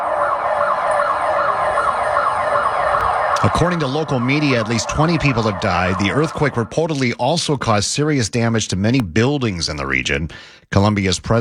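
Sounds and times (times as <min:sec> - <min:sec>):
earthquake warning sirens in western Colombia: 0:00.0 - 0:07.2
speech: 0:03.4 - 0:11.4.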